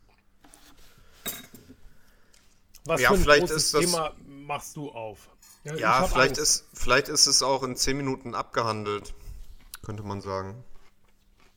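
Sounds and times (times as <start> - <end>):
faint clatter of tableware: 1.2 - 1.8, 5.4 - 6.3
wine glasses clinking in a toast: 1.3 - 1.6
speech: 2.9 - 9.2, 9.8 - 10.7.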